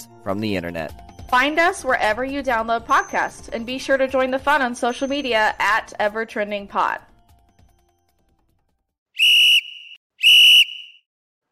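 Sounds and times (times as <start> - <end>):
speech: 0.2 - 7.1
loud sharp shrill whistle blasts: 9.2 - 11.1.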